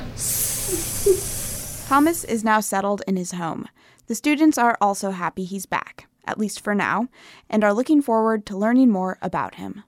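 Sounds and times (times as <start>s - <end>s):
students imitating a snake's hiss during a class: 0.2s - 2.3s
speech: 1.9s - 9.8s.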